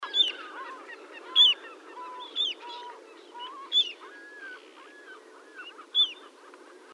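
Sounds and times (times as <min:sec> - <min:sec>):
little ringed plover Charadrius dubius curonicus: 0:00.0 - 0:06.9.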